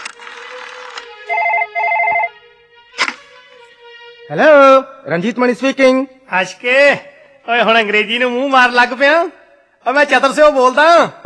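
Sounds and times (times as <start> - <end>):
electronic telephone ringing after a number is dialled: 0.1 - 2.4
speech: 4.3 - 11.2.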